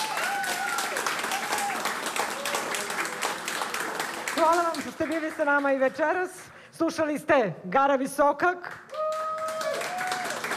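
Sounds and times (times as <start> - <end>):
audience applauding after a live concert performance: 0.0 - 5.9, 8.8 - 10.5
speech: 4.4 - 8.9.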